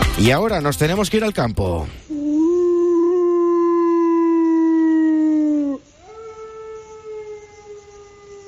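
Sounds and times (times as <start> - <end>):
speech: 0.2 - 2.4
wolves howling in a chorus: 2.2 - 8.4.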